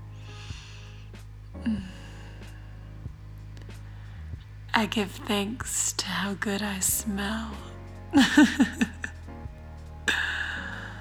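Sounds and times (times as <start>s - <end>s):
steady low hum: 0.0s - 10.9s
slow deep breathing through the nose toward a pillow: 0.1s - 4.7s, 10.1s - 10.9s
speech: 4.8s - 9.0s
laughter: 8.1s - 9.2s.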